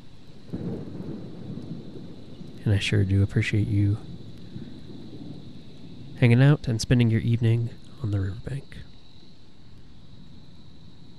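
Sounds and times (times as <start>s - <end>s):
low rolling rumble of thunder: 0.0s - 8.8s
steady rain: 0.0s - 11.1s
speech: 2.7s - 4.1s, 6.2s - 8.9s.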